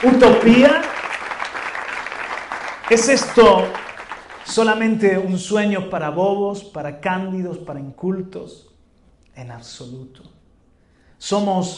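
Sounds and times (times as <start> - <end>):
speech: 0.0 - 0.9, 2.9 - 3.8, 4.5 - 8.7, 9.4 - 10.4, 11.2 - 11.7
crowd applauding: 0.0 - 4.9.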